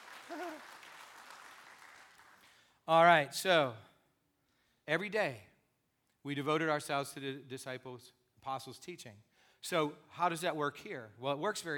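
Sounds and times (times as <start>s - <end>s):
crowd applauding: 0.0s - 2.5s
vocal whoop: 0.3s - 0.7s
speech: 2.9s - 3.9s, 4.9s - 5.5s, 6.2s - 11.7s.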